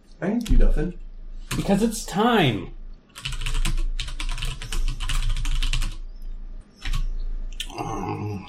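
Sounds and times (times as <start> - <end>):
speech: 0.2 - 3.3
typing on a computer keyboard while changing a server encryption key: 3.1 - 6.0, 6.8 - 7.1.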